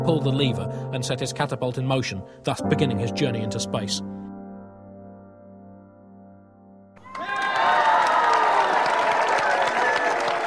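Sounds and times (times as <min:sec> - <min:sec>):
speech: 0:00.1 - 0:04.2
big crowd cheering: 0:07.0 - 0:10.4
crowd applause: 0:07.0 - 0:10.4.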